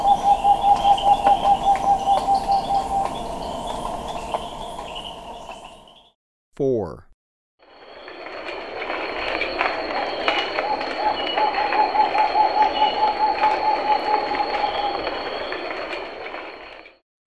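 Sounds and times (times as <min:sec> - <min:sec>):
Rufescent screech-owl hooting in Ecuador: 0:00.0 - 0:06.0, 0:10.6 - 0:15.1
insect hum: 0:00.0 - 0:06.1, 0:07.7 - 0:16.9
speech: 0:06.6 - 0:07.0.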